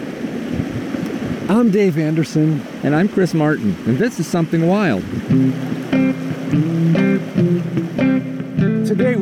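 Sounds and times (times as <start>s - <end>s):
fast-flowing brook water rushing: 0.0s - 9.2s
speech: 1.5s - 6.8s
short tonal notes: 5.2s - 9.0s.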